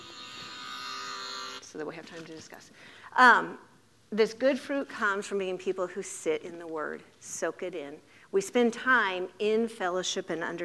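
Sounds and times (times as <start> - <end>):
steady continuous electronic alarm tone: 0.0 - 1.7
speech: 1.7 - 10.6.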